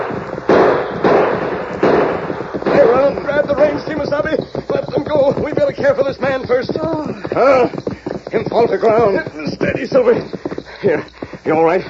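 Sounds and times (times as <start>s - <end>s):
gunshots fired to drive off attackers: 0.0s - 4.2s
rough noise: 0.0s - 11.8s
speech: 5.1s - 11.8s.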